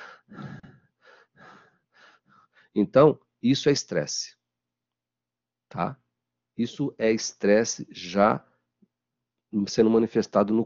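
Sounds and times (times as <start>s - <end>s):
person panting in short rapid shallow breaths: 0.0s - 2.2s
speech: 2.8s - 4.4s, 5.7s - 6.0s, 6.6s - 8.5s, 9.5s - 10.6s.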